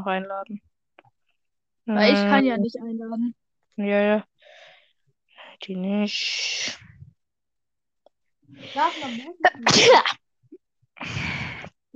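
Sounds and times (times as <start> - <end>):
speech: 0.0 - 0.7, 1.9 - 4.6, 5.6 - 6.9, 8.5 - 10.2
person sneezing: 9.6 - 10.2.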